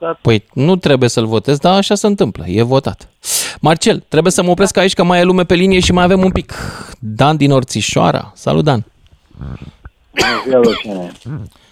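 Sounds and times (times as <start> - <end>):
speech: 0.0 - 11.6
person coughing and clearing throat: 10.2 - 11.5.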